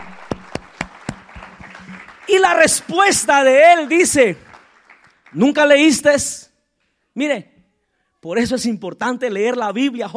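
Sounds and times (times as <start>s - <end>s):
gathered crowd applauding: 0.0s - 5.8s
speech: 2.3s - 4.5s, 5.3s - 6.5s, 7.2s - 7.5s, 8.2s - 10.1s.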